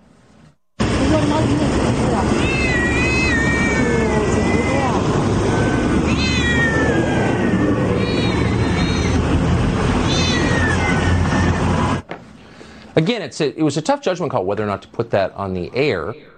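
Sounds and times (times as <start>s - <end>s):
dense rumble: 0.8s - 12.0s
speech: 1.1s - 2.5s, 13.0s - 16.3s
many house cats in bags meowing and yowling: 2.3s - 12.0s.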